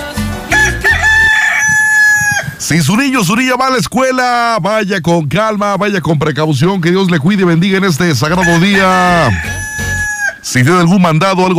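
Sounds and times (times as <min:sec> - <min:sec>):
rooster crowing in the morning: 0:00.5 - 0:02.6, 0:08.3 - 0:10.4
speech: 0:02.7 - 0:09.6, 0:10.4 - 0:11.5.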